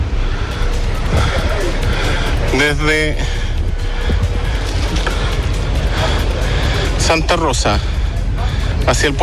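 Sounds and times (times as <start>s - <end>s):
street traffic of cars on the Alameda in Santiago, Chile: 0.0s - 9.2s
speech: 2.6s - 3.4s, 7.0s - 7.9s, 8.8s - 9.2s.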